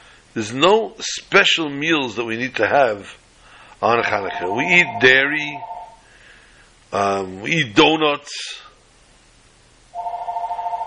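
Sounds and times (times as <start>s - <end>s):
speech: 0.4s - 3.2s, 3.8s - 5.7s, 6.9s - 8.7s
telephone ringing with electronic tone: 4.2s - 6.0s, 10.0s - 10.8s.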